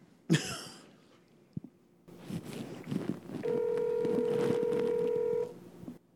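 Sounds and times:
low hiss: 0:00.0 - 0:06.1
person coughing or clearing throat: 0:00.3 - 0:00.9
telephone dialing tone: 0:03.4 - 0:05.5.

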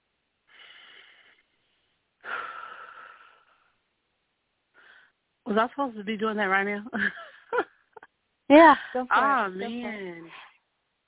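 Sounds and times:
slow deep breaths during a mindfulness exercise: 0:00.5 - 0:03.8, 0:04.7 - 0:05.2
speech: 0:05.5 - 0:07.6, 0:08.5 - 0:10.4.

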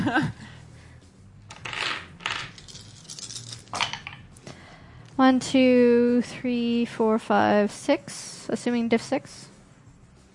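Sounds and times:
speech: 0:00.1 - 0:00.4, 0:05.2 - 0:09.5
small hard dice rattling across a hard surface: 0:01.5 - 0:04.2.

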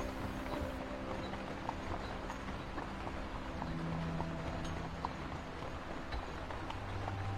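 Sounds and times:
horse hooves clip-clopping on ground in walking rhythm: 0:00.0 - 0:07.3.

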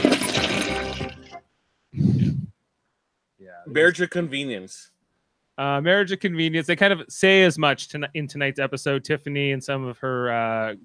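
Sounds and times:
loud toilet flush rushing and gurgling: 0:00.0 - 0:01.4
speech: 0:03.6 - 0:04.9, 0:05.6 - 0:10.8.

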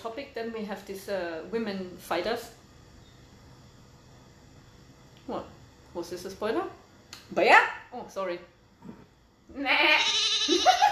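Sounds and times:
speech: 0:00.1 - 0:02.6, 0:05.3 - 0:10.9
goat bleat: 0:09.6 - 0:10.9.

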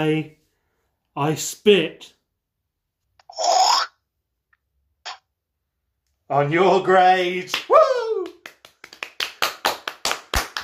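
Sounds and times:
speech: 0:00.0 - 0:00.4, 0:01.2 - 0:02.2, 0:06.3 - 0:07.7
quiet applause from a small audience: 0:07.5 - 0:10.6.

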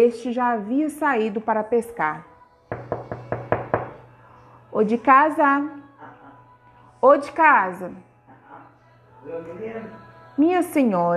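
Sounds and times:
speech: 0:00.0 - 0:02.3, 0:04.8 - 0:05.8, 0:07.0 - 0:08.1, 0:09.2 - 0:11.1
knocking on a wooden door: 0:02.7 - 0:04.0.

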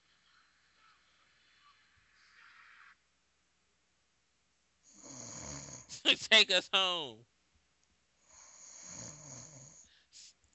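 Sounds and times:
person snoring: 0:05.0 - 0:06.0, 0:08.4 - 0:09.8
speech: 0:06.0 - 0:07.3.

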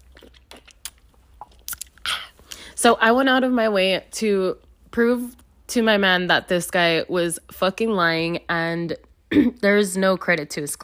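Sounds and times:
person sipping a drink with slurping and mouth noises: 0:00.0 - 0:02.7
speech: 0:02.8 - 0:10.8.

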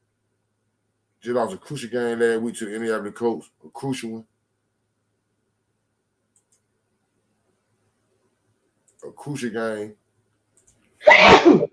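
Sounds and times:
speech: 0:01.2 - 0:04.3, 0:09.2 - 0:10.0
person sneezing: 0:11.0 - 0:11.7.

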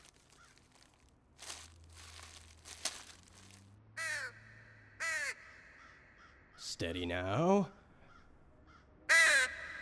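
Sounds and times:
crow cawing harshly: 0:00.3 - 0:00.8, 0:04.0 - 0:06.6, 0:08.0 - 0:09.8
speech: 0:06.8 - 0:07.8.

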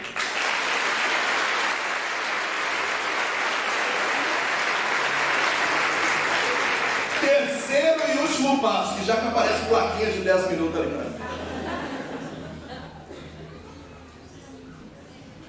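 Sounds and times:
audience applauding in church: 0:00.0 - 0:08.2
laughter: 0:03.8 - 0:06.9, 0:11.0 - 0:14.2
speech: 0:08.0 - 0:11.2.

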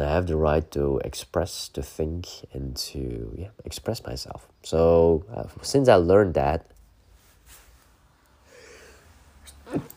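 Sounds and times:
speech: 0:00.0 - 0:06.8, 0:09.7 - 0:09.9
low hiss: 0:00.0 - 0:09.9
person sneezing: 0:09.4 - 0:09.9.

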